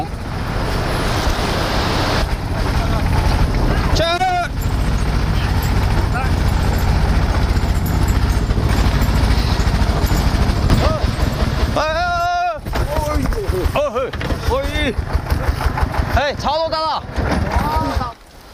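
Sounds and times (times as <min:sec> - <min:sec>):
tractor engine rumbling on the road with hay loads: 0:00.0 - 0:18.5
people shouting and calling out: 0:03.6 - 0:06.6, 0:10.6 - 0:13.1.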